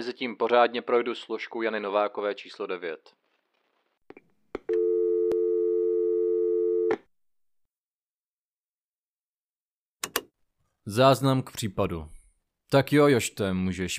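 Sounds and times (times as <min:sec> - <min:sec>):
speech: 0:00.0 - 0:03.2, 0:10.9 - 0:13.9
telephone call tone: 0:04.7 - 0:07.0.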